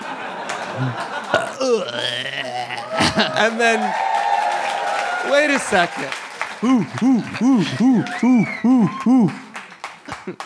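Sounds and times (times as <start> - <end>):
people chuckling and laughing: 0.0 - 3.9, 5.5 - 10.4
short low burp: 0.8 - 3.4
speech: 0.8 - 4.1, 5.2 - 9.4.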